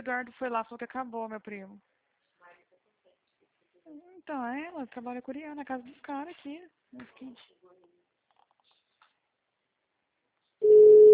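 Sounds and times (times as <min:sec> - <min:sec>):
speech: 0:00.0 - 0:02.0, 0:03.9 - 0:07.9
telephone dial tone while placing a call: 0:10.6 - 0:11.1.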